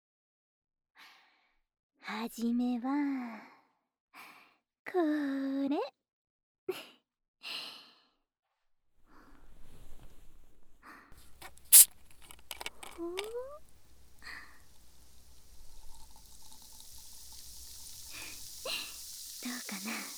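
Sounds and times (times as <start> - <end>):
speech: 2.0 - 3.5, 4.9 - 6.0, 6.7 - 6.9, 13.0 - 13.6, 19.5 - 20.1
soft breaths: 11.2 - 20.1
sparkling water fizzing hiss: 11.2 - 20.1
sparkling water poured into a glass, gurgling: 11.3 - 20.1.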